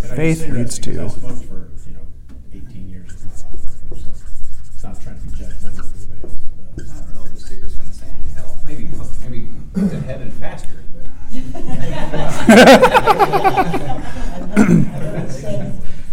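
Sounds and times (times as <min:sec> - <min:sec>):
speech: 0:00.2 - 0:01.6, 0:11.4 - 0:15.6
pen scratching across paper: 0:03.0 - 0:09.4
laughter: 0:11.3 - 0:16.0.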